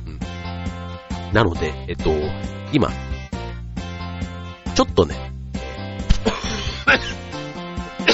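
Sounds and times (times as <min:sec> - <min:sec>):
speech: 0:01.3 - 0:03.0, 0:04.8 - 0:05.3
throat clearing: 0:06.1 - 0:07.2
harsh coughs: 0:06.1 - 0:07.3.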